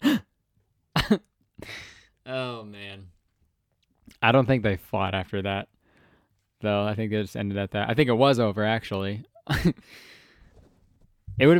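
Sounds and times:
person imitating students gasping: 0:00.0 - 0:00.3, 0:01.6 - 0:02.2
speech: 0:01.1 - 0:03.2, 0:04.2 - 0:05.8, 0:06.6 - 0:10.2, 0:11.4 - 0:11.5.

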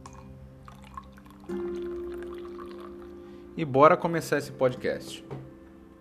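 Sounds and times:
drink pouring steadily into a cup: 0:00.0 - 0:03.3
speech: 0:03.6 - 0:05.5.

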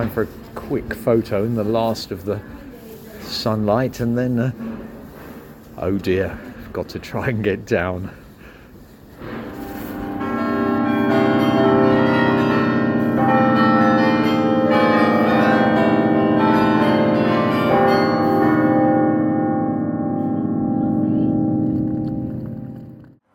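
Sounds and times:
speech: 0:00.0 - 0:02.6, 0:03.3 - 0:04.7, 0:05.8 - 0:08.2
church tower bells ringing: 0:09.2 - 0:23.2.

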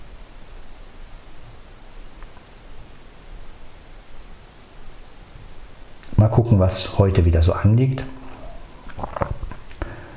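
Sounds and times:
speech: 0:06.2 - 0:08.2
male cat meowing: 0:08.3 - 0:08.9.

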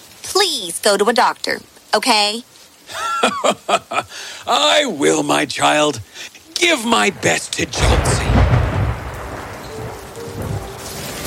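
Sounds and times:
hail pelting: 0:00.0 - 0:11.2
speech: 0:00.4 - 0:08.2
laughter: 0:02.9 - 0:04.2
low thunder rumbling: 0:06.6 - 0:11.2.

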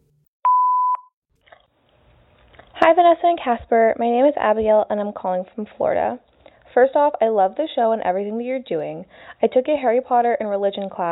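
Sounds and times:
voicemail beep before a caller's message: 0:00.5 - 0:01.1
speech: 0:02.8 - 0:11.0.

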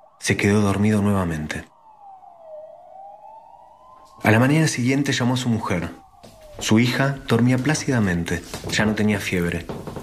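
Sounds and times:
distant emergency siren wailing at night: 0:00.0 - 0:10.0
speech: 0:00.2 - 0:01.7, 0:04.2 - 0:09.9.

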